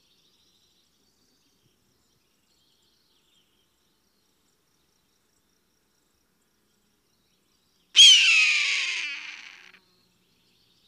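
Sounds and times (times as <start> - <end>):
hawk scream: 8.0 - 9.8.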